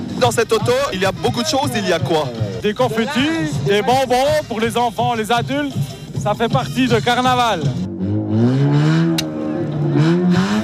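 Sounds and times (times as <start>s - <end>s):
speech: 0.2s - 7.8s
car engine revving hard as if launching from a standstill: 7.6s - 10.6s.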